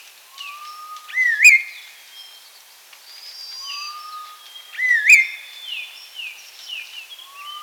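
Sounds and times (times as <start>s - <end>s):
chestnut-crowned laughingthrush whistling call: 0.4s - 1.7s, 3.6s - 5.4s.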